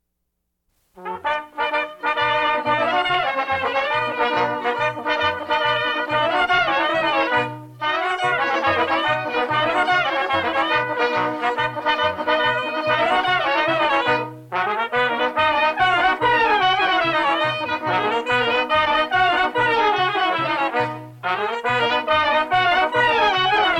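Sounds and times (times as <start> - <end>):
village artisan band playing Piedmont folk dance music: 0.9 - 23.7.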